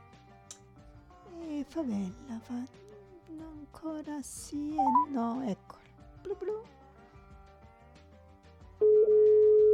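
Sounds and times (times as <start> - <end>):
speech: 1.6 - 6.8
button press: 4.8 - 5.0
telephone ringback tone through the line: 4.8 - 5.1.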